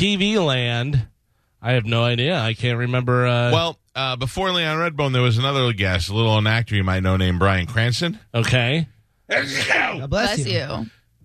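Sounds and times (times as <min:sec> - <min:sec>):
speech: 0:00.0 - 0:11.0
person sneezing: 0:09.3 - 0:10.1.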